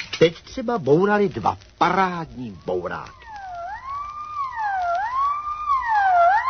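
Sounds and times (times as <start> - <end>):
speech: 0.2 - 3.2
ambulance siren wailing: 2.4 - 6.4.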